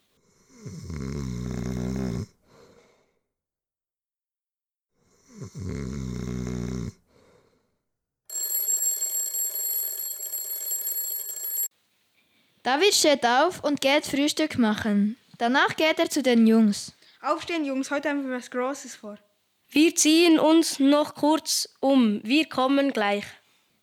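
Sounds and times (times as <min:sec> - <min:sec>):
long deep snores: 0:00.2 - 0:03.2, 0:05.0 - 0:07.7
alarm clock metallic ringing: 0:08.3 - 0:11.7
speech: 0:12.7 - 0:23.8.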